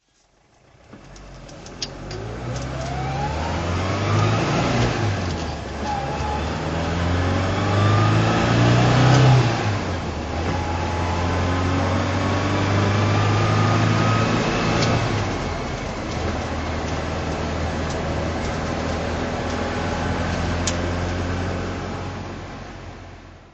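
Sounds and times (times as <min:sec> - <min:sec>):
Alfa Romeo Giulia 1600 Sprint driving: 0:00.5 - 0:23.5.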